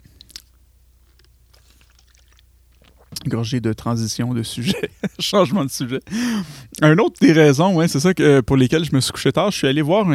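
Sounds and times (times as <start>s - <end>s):
quiet sip of water: 0.0s - 3.2s
soft wet mouth clicks and smacking noises: 0.0s - 3.3s
speech: 3.2s - 10.1s
laughter: 4.6s - 6.1s.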